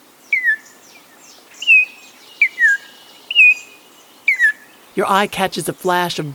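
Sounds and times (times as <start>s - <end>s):
soft hiss of insects: 0.0s - 6.3s
Altamira oriole whistled song in a wooded thicket along the lower Rio Grande: 0.3s - 0.7s, 1.6s - 4.7s
speech: 5.0s - 6.3s.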